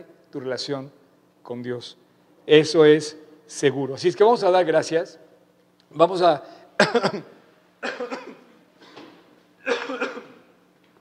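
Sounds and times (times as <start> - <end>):
speech: 0.0 - 5.2, 5.9 - 8.1
person coughing harshly: 6.8 - 10.5.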